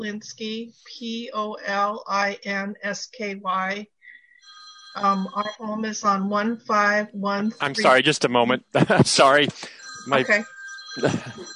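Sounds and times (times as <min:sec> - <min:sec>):
speech: 0:00.0 - 0:11.5
cell phone ringtone through a computer speaker: 0:03.5 - 0:08.2, 0:09.1 - 0:11.5
laughter: 0:07.6 - 0:09.8, 0:11.0 - 0:11.5.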